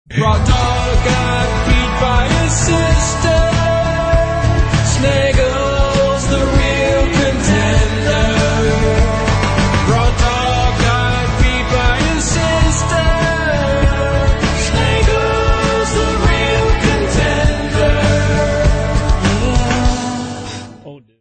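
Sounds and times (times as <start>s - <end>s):
filtered song: 0.0s - 21.1s.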